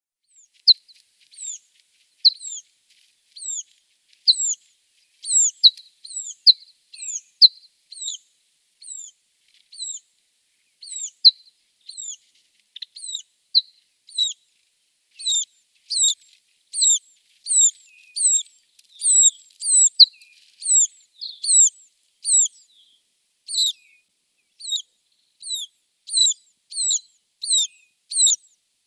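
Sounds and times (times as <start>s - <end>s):
Red-throated Pipit calls: 0.3s - 1.6s, 2.2s - 2.7s, 3.4s - 3.7s, 4.3s - 4.6s, 5.2s - 10.0s, 10.8s - 12.2s, 12.8s - 14.4s, 15.2s - 22.9s, 23.5s - 24.0s, 24.6s - 28.6s.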